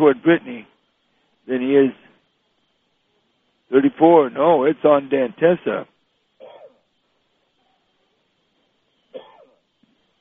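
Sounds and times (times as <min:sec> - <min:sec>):
speech: 0:00.0 - 0:00.7, 0:01.5 - 0:02.0, 0:03.7 - 0:05.9
low room noise: 0:00.0 - 0:10.1
faint sneezes: 0:06.4 - 0:06.8.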